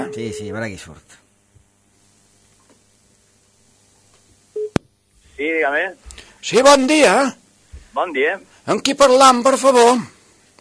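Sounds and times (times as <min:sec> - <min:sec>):
loud steady phone line tone as the call connects: 0:00.0 - 0:00.6
low static hiss on a phone line: 0:00.0 - 0:10.5
speech: 0:00.2 - 0:01.2, 0:05.4 - 0:07.4, 0:08.0 - 0:10.2.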